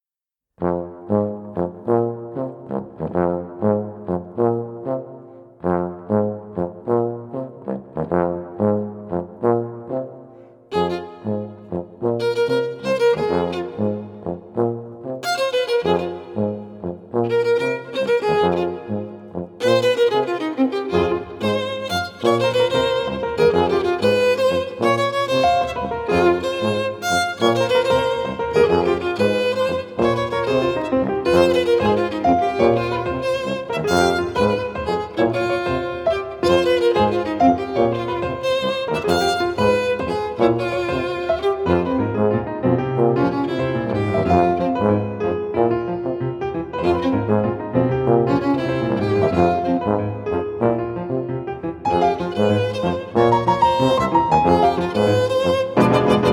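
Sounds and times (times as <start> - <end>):
piano: 0.6 - 56.3
tuba: 0.6 - 56.3
violin: 10.7 - 14.3, 15.2 - 45.4, 46.0 - 50.4, 51.8 - 56.3.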